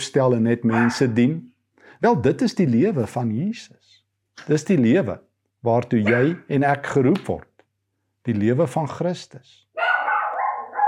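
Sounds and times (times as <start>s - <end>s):
speech: 0.0s - 7.5s, 8.2s - 9.6s
household dog barking: 0.7s - 1.2s, 9.8s - 10.8s.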